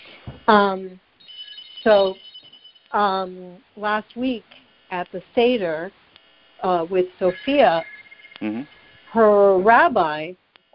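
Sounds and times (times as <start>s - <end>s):
thin steady high tone: 0.0s - 3.6s, 6.6s - 9.2s
speech: 0.5s - 1.0s, 1.8s - 2.3s, 2.9s - 6.0s, 6.6s - 10.4s
telephone ringing: 1.2s - 3.1s, 7.2s - 9.0s.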